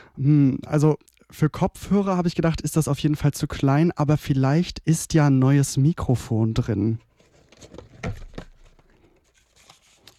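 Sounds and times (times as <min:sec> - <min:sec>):
speech: 0:00.2 - 0:08.2
paper scraps and odds and ends rustling in a small box: 0:07.1 - 0:10.1.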